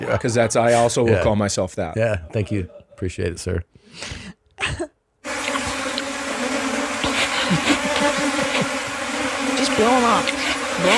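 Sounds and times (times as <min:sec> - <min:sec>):
laughter: 0:00.0 - 0:03.2, 0:06.9 - 0:09.7
speech: 0:00.0 - 0:04.8, 0:09.8 - 0:10.9
many live bees buzzing on a honeycomb: 0:05.2 - 0:10.9.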